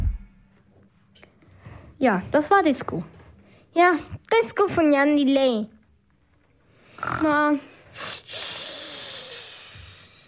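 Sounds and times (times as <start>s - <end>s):
speech: 2.0s - 3.2s, 3.8s - 5.8s, 7.0s - 8.5s
person snoring loudly: 7.0s - 10.2s.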